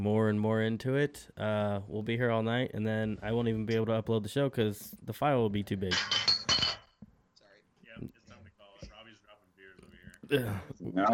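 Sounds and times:
speech: 0.0s - 6.4s, 8.0s - 8.2s, 10.3s - 11.1s
glass object clinking on the floor: 5.9s - 7.1s.

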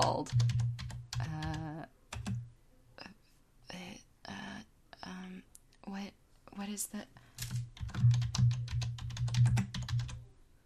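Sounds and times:
rapid typing on a computer keyboard: 0.0s - 2.4s, 7.4s - 10.2s
speech: 0.2s - 2.0s, 6.7s - 7.2s.

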